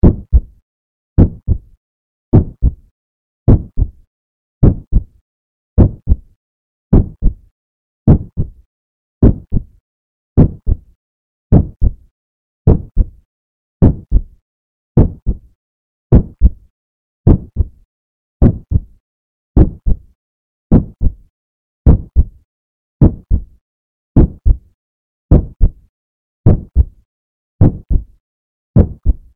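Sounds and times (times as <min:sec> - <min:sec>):
heartbeat: 0:00.0 - 0:00.6, 0:01.2 - 0:02.8, 0:03.5 - 0:04.0, 0:04.6 - 0:05.2, 0:05.8 - 0:07.5, 0:08.1 - 0:08.6, 0:09.2 - 0:09.8, 0:10.4 - 0:10.9, 0:11.5 - 0:12.1, 0:12.7 - 0:13.2, 0:13.8 - 0:14.4, 0:15.0 - 0:16.7, 0:17.3 - 0:17.8, 0:18.4 - 0:19.0, 0:19.6 - 0:21.3, 0:21.9 - 0:22.4, 0:23.0 - 0:23.6, 0:24.2 - 0:27.0, 0:27.6 - 0:28.2, 0:28.8 - 0:29.3.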